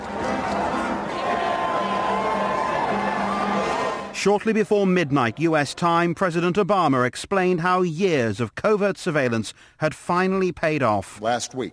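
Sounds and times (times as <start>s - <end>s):
large crowd in New York and Washington cheering: 0.0s - 6.0s
speech: 4.2s - 11.7s.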